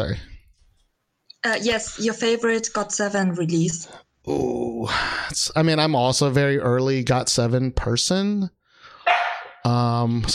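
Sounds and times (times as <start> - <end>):
speech: 0.0 - 0.3, 1.4 - 8.6, 9.6 - 10.3
dog barking: 9.1 - 9.7.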